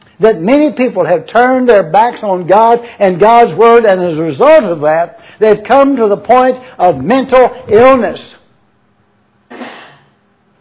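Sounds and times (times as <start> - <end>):
quiet hiss: 0.0 - 10.5
speech: 0.2 - 8.4
audience member coughing during a sermon: 9.5 - 10.2.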